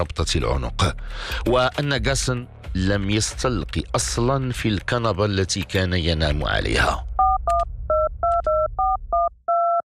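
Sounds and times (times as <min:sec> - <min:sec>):
speech: 0:00.0 - 0:07.1
touch-tone keypad beeps dialing a telephone number: 0:07.2 - 0:09.8.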